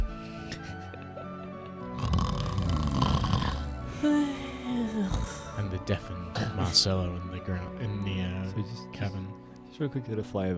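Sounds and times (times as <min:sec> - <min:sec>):
voices imitating the snoring of several sleepers: 0:01.9 - 0:05.7
speech: 0:05.9 - 0:10.5.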